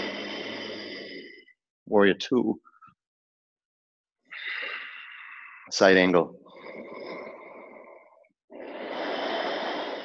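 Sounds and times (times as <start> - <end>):
person breathing during a yoga session: 0.0 - 1.6, 4.3 - 5.7, 6.4 - 10.0
speech: 1.9 - 2.7, 5.7 - 6.4.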